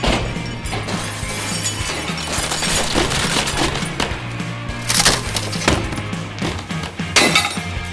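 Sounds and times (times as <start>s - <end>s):
continuous clattering debris: 0.0s - 7.8s
glass shattering: 0.0s - 7.8s
furniture being smashed: 1.9s - 7.6s.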